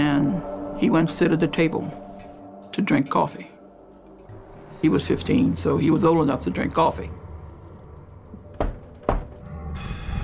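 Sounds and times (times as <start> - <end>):
speech: 0.0 - 2.0, 2.7 - 3.5, 4.8 - 7.2
firm knocks on a door: 8.5 - 9.4.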